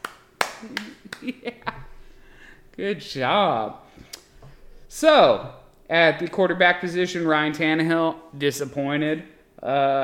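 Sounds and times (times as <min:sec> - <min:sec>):
hands clapping: 0:00.0 - 0:01.5
speech: 0:00.6 - 0:01.9, 0:02.8 - 0:03.8, 0:04.9 - 0:10.0.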